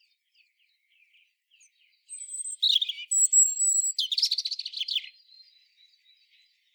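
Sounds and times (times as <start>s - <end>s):
European robin song: 1.6s - 6.4s.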